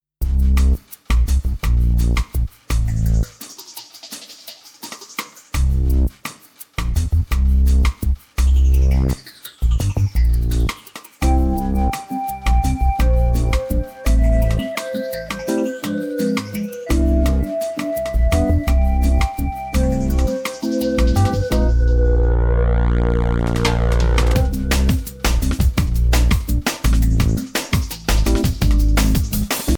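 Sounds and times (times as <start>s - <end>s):
partido alto samba rhythm: 0.2s - 29.7s.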